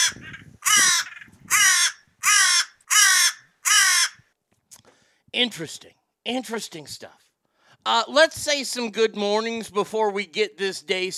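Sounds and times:
crow cawing: 0.0 - 4.2
speech: 5.3 - 7.2, 7.8 - 11.1.

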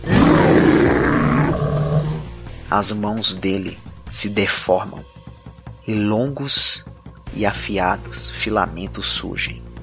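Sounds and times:
deep rumbling monster roar with guttural growl: 0.0 - 2.3
speech: 2.7 - 5.2, 5.9 - 9.7.

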